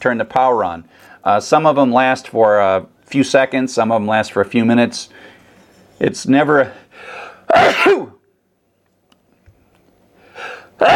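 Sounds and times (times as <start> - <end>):
speech: 0.0 - 5.3, 6.0 - 8.2
person sneezing: 7.5 - 8.2, 10.4 - 10.9.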